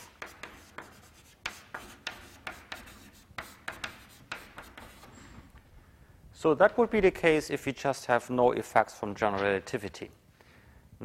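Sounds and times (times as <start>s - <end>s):
writing scratching on a board during a physics lecture: 0.0s - 5.3s
speech: 6.4s - 10.2s.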